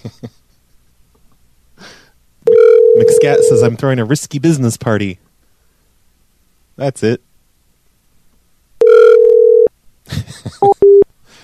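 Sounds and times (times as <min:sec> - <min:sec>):
telephone dial tone while calling someone back: 0:02.5 - 0:03.6, 0:08.8 - 0:09.7
speech: 0:03.2 - 0:05.3, 0:06.8 - 0:07.3.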